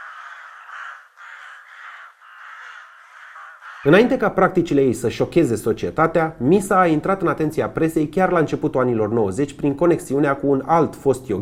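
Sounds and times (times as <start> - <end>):
crows cawing: 0.0 - 4.0
speech: 3.8 - 11.3.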